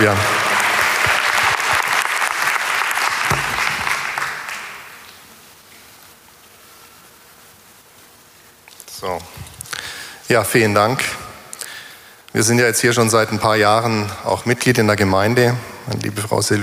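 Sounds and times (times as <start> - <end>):
speech: 0.0 - 0.3, 10.3 - 11.2, 12.4 - 16.6
audience clapping: 0.0 - 5.2.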